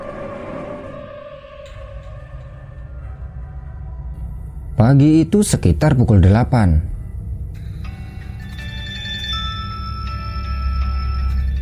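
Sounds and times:
steady low hum: 0.0 - 11.5
speech: 4.8 - 6.9
mobile phone ringtone: 8.2 - 11.5.

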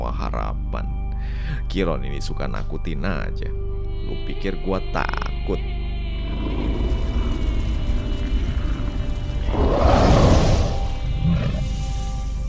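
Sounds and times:
speech: 0.1 - 6.7
low ominous rumbling drone: 5.0 - 12.4
monstrous roaring and barking: 6.3 - 11.9.

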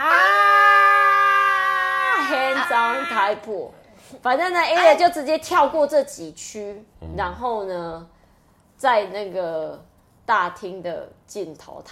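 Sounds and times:
person imitating a little girl screaming: 0.0 - 3.4
speech: 2.7 - 8.2, 8.8 - 11.8.

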